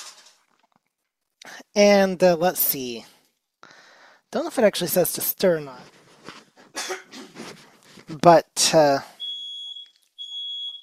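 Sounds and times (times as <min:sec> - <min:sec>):
speech: 0:01.5 - 0:03.1, 0:04.3 - 0:06.0, 0:08.1 - 0:09.1
smoke alarm beeping with long high-pitched beeps: 0:09.2 - 0:10.8.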